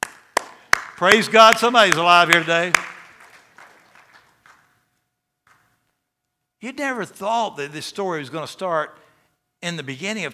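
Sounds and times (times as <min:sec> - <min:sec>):
audience clapping: 0:00.0 - 0:04.8
speech: 0:01.0 - 0:02.9, 0:06.6 - 0:09.0, 0:09.6 - 0:10.3
single sharp clap: 0:02.4 - 0:04.6.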